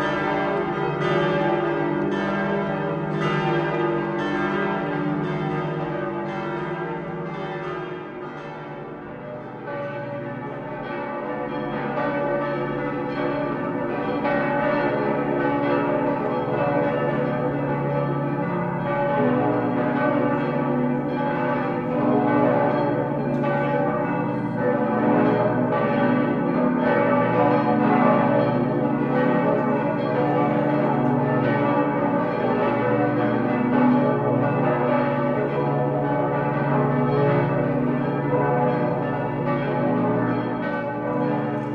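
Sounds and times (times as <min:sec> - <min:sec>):
church bells cast in 1626-27 pealing in Rothenburg ob der Tauber: 0:00.0 - 0:41.7.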